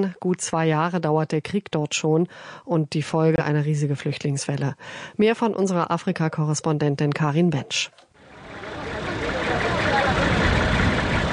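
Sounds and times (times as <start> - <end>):
speech: 0.0 - 8.0
large truck engine idling: 8.2 - 11.3.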